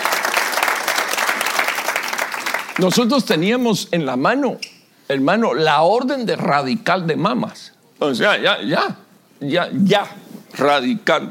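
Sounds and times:
church audience applauding: 0.0s - 3.2s
speech: 2.8s - 11.2s.

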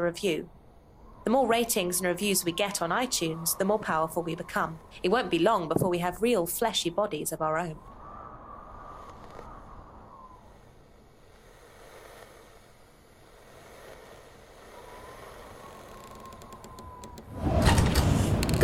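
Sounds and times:
speech: 0.0s - 0.6s, 1.2s - 7.9s
sliding door rolling with a whining drag: 15.4s - 18.6s
door banging shut: 17.4s - 18.6s.

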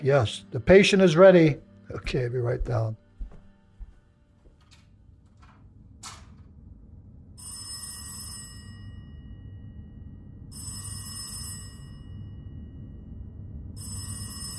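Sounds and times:
speech: 0.0s - 3.0s
low rumble: 4.2s - 14.5s
old-style telephone bell ringing: 7.4s - 9.8s, 10.5s - 12.9s, 13.8s - 14.5s.

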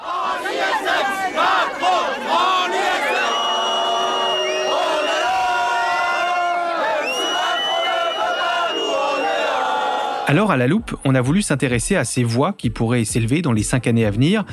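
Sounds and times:
large crowd of protesters in France shouting and chanting: 0.0s - 10.3s
speech: 10.3s - 14.5s.

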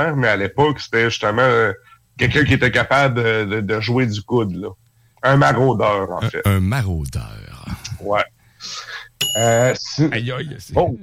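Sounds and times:
speech: 0.0s - 11.0s
bicycle bell ringing: 9.2s - 9.7s.

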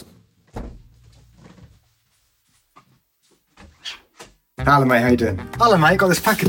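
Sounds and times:
front door opening with a solid thunk and low rumble: 0.5s - 0.9s
speech: 4.7s - 6.4s.

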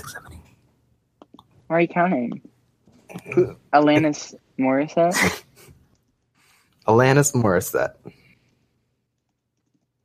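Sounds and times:
low hum: 0.0s - 10.0s
speech: 1.7s - 2.5s, 3.1s - 5.4s, 6.9s - 8.2s
typing on a computer keyboard: 9.2s - 10.0s.

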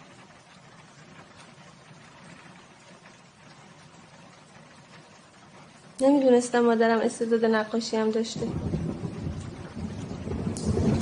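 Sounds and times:
steady fine drizzling rain pattering: 0.0s - 11.0s
speech: 6.0s - 8.7s
low rumble: 8.3s - 11.0s.

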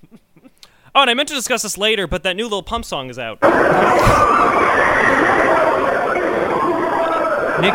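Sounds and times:
speech: 1.0s - 4.6s
eerie screaming and wailing voices: 3.4s - 7.7s
harsh hellish roar: 3.4s - 7.7s.

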